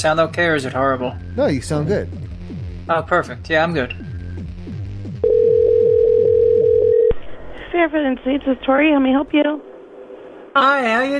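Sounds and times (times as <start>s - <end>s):
speech: 0.0s - 2.3s, 2.9s - 4.0s, 7.7s - 9.7s, 10.6s - 11.1s
telephone dial tone before placing a call: 5.2s - 7.2s.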